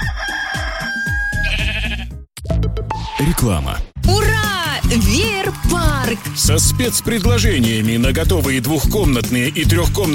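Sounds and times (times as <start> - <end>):
rooster crowing: 0.0 - 1.7
speech: 3.2 - 10.1
rhythmic thumping: 4.1 - 10.1.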